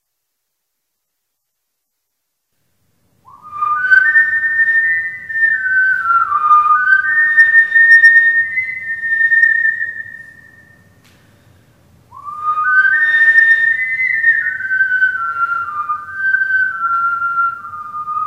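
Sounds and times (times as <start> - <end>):
person whistling: 3.3 - 11.0, 12.1 - 18.2.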